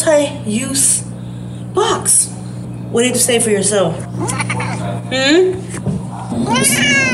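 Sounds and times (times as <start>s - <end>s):
speech: 0.1s - 1.2s, 1.8s - 7.1s
cat meowing loudly with rising wavering pitch: 6.4s - 7.1s.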